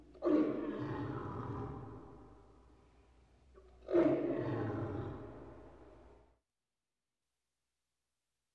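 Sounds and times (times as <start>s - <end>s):
big cat roaring in a cage: 0.2s - 2.0s, 3.8s - 5.4s.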